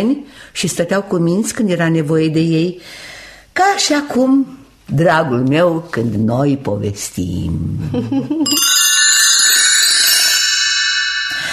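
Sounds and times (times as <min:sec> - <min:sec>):
speech: 0:00.0 - 0:08.8
small bells of a little snake jingling: 0:08.5 - 0:11.5.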